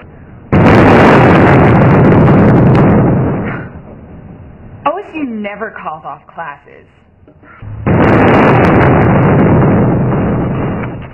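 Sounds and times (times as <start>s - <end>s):
missiles exploding: 0.5s - 3.8s, 7.6s - 11.1s
speech: 5.0s - 7.5s.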